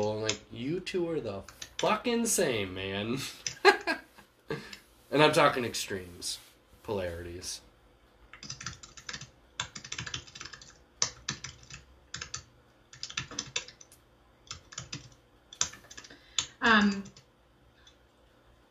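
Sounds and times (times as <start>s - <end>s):
typing on a computer keyboard: 0.0s - 0.4s, 8.3s - 18.0s
speech: 0.3s - 4.0s, 4.6s - 7.7s, 16.6s - 17.2s.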